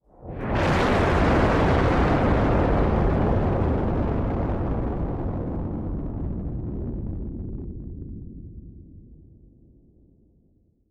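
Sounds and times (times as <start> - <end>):
distorted nuclear explosion: 0.3 - 7.5.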